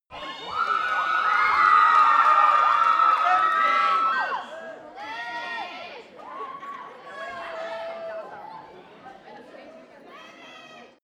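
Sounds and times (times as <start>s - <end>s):
young theatre audience shouting: 0.1s - 8.6s.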